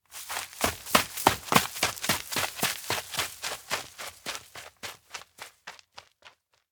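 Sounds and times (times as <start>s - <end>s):
footsteps on leaves on an outdoor hill: 0.0s - 4.1s.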